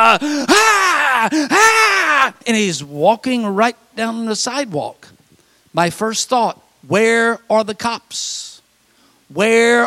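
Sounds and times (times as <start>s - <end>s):
speech: 0.1s - 0.5s, 2.5s - 5.1s, 5.7s - 8.5s, 9.3s - 9.8s
man imitating a man breathing very hard: 0.2s - 0.6s, 1.3s - 1.6s.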